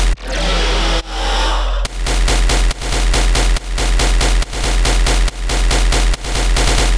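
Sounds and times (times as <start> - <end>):
sidechained deathstep bass loop: 0.2 - 6.9.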